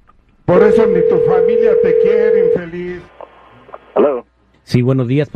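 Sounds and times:
speech: 0:00.5 - 0:03.1, 0:04.7 - 0:05.3
telephone dial tone: 0:00.8 - 0:02.6.

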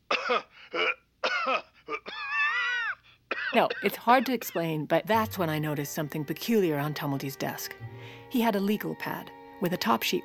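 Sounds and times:
person giving deliberate staged coughs: 0:00.1 - 0:02.4, 0:03.3 - 0:04.1
speech: 0:00.3 - 0:01.7, 0:03.6 - 0:10.2.

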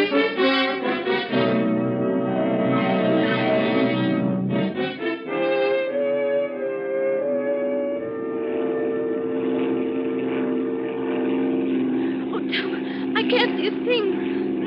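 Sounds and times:
small propeller plane engine droning in flight coming in to land: 0:00.0 - 0:14.6
voices: 0:11.9 - 0:14.6.

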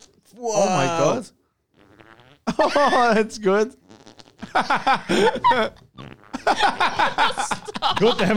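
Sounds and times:
speech: 0:00.3 - 0:01.4, 0:02.6 - 0:03.8, 0:04.5 - 0:05.8, 0:06.5 - 0:08.3
armpit farts made by squeezing a hand against an armpit: 0:01.7 - 0:02.6, 0:03.8 - 0:04.6, 0:05.9 - 0:06.6
laughter: 0:02.5 - 0:03.2, 0:04.4 - 0:08.3.

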